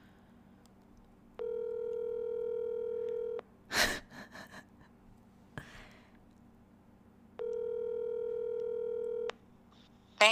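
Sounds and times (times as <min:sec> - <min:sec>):
phone call electronic ring tones: 0:01.4 - 0:03.4, 0:07.4 - 0:09.3.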